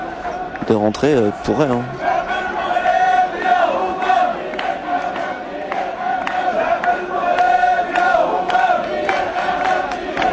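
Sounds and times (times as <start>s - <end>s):
large crowd of protesters shouting and chanting at a demonstration in Rabat: 0.0s - 10.3s
speech: 0.7s - 2.1s.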